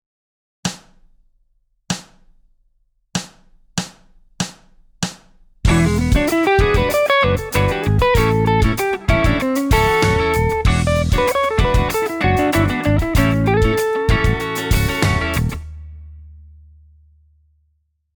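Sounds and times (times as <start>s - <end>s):
funk solo: 5.6s - 15.7s.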